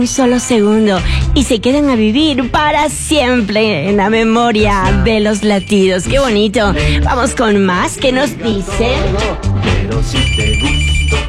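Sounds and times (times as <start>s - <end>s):
telephone ringing on a call that fails to connect: 0.0s - 1.0s, 5.1s - 6.4s, 10.1s - 11.2s
speech: 0.0s - 9.4s.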